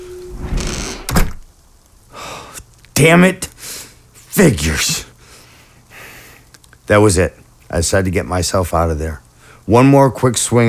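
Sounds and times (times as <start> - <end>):
door slamming shut in the wind: 0.4 - 1.5
speech: 3.0 - 3.5, 4.4 - 5.1, 6.9 - 10.6.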